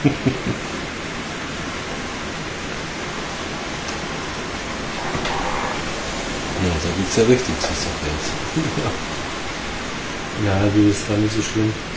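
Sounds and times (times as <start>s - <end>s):
speech: 0.0s - 0.7s, 6.8s - 9.2s, 10.4s - 11.9s
rain pattering: 0.0s - 11.9s.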